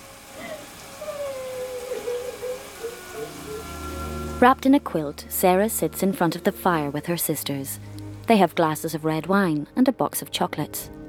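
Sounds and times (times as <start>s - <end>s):
shower water running: 0.0s - 8.4s
faint wavering tone: 1.4s - 5.7s
speech: 4.4s - 11.0s.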